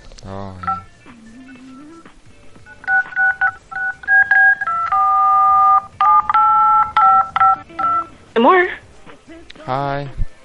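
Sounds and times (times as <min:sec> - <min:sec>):
speech: 0:00.2 - 0:00.8, 0:08.4 - 0:08.8, 0:09.7 - 0:10.2
DTMF tone generator producing telephone dialing tones: 0:00.6 - 0:00.9, 0:02.7 - 0:08.1.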